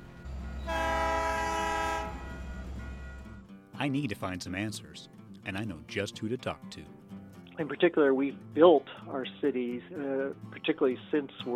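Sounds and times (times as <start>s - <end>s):
train rumbling past: 0.0s - 3.4s
train horn blaring: 0.4s - 3.4s
speech: 3.8s - 7.0s, 7.6s - 11.5s.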